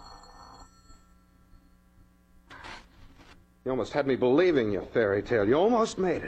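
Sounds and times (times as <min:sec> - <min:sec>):
telephone ringing with a bright electronic trill: 0:00.0 - 0:01.2
speech: 0:03.6 - 0:06.2.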